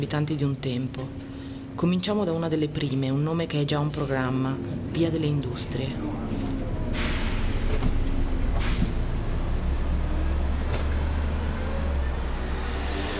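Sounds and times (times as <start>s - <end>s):
speech: 0.0s - 7.1s
city bus engine rumbling: 0.0s - 13.1s
general street traffic: 0.0s - 13.1s
city bus air brakes hissing: 6.9s - 8.0s, 8.6s - 9.2s.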